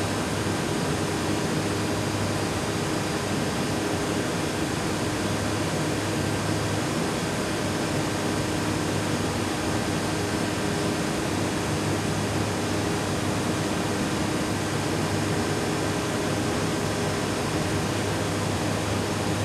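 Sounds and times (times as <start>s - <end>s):
huge generator running: 0.0s - 19.4s.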